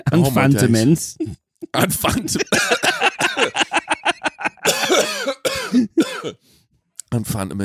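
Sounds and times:
speech: 0:00.0 - 0:03.5, 0:07.4 - 0:07.6
laughter: 0:01.8 - 0:05.0
person coughing after choking: 0:02.2 - 0:03.7, 0:04.6 - 0:06.4.

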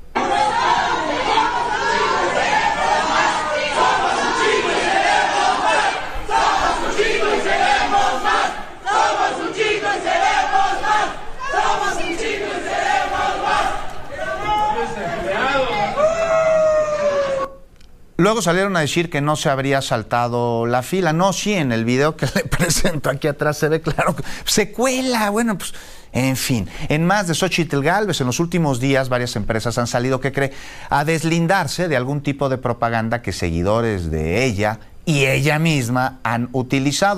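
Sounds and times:
group of people shouting angrily at an airport: 0:00.1 - 0:17.5
speech: 0:18.2 - 0:37.1.

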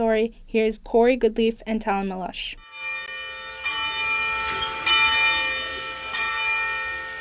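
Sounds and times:
speech: 0:00.0 - 0:02.8
church bell ringing in Gunawagi: 0:02.6 - 0:07.2.

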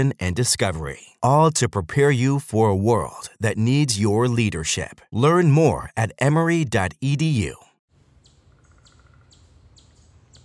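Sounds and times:
speech: 0:00.0 - 0:07.7
woodpecker giving sharp high downward-sliding calls: 0:08.5 - 0:10.4.

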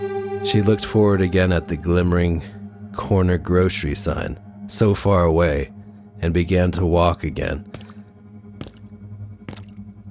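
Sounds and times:
speech: 0:00.0 - 0:07.8
woman's boots splashing through wet puddles: 0:07.8 - 0:08.0, 0:08.6 - 0:08.9, 0:09.5 - 0:09.8.

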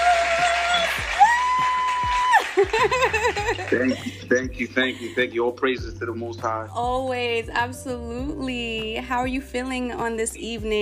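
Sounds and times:
crowd clapping and cheering: 0:00.0 - 0:04.3
laughter: 0:02.3 - 0:05.5
speech: 0:02.7 - 0:10.8.

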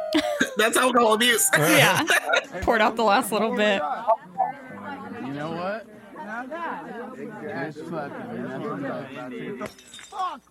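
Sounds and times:
laughter: 0:00.0 - 0:04.2
speech: 0:00.1 - 0:04.3, 0:05.4 - 0:10.4
people talking over each other: 0:00.6 - 0:09.9
glass bottle shattering: 0:09.6 - 0:10.4
glass clinking after a bottle crash: 0:09.6 - 0:10.4.

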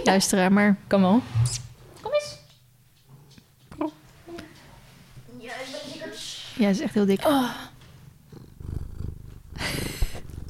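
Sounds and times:
speech: 0:00.0 - 0:01.6, 0:06.6 - 0:07.7
cat purring: 0:07.1 - 0:10.4.

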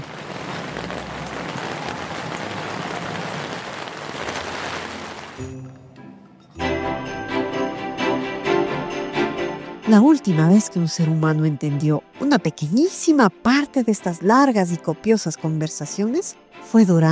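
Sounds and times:
light rain pattering on leaves: 0:00.0 - 0:05.4
bright tonal music with no voices: 0:05.4 - 0:17.1
speech: 0:09.9 - 0:17.1.

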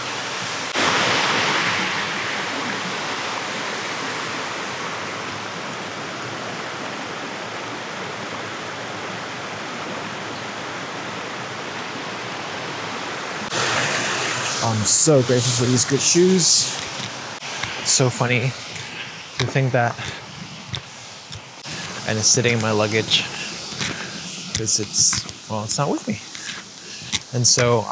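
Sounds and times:
rushing cold stream water: 0:00.0 - 0:27.8
speech: 0:14.7 - 0:16.8, 0:18.0 - 0:18.7, 0:19.4 - 0:20.2, 0:22.1 - 0:23.4, 0:24.6 - 0:26.3, 0:27.3 - 0:27.8.

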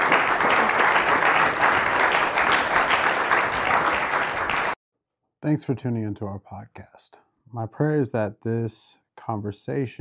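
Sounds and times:
audience applause with many hands clapping: 0:00.0 - 0:04.8
speech: 0:05.4 - 0:09.9.

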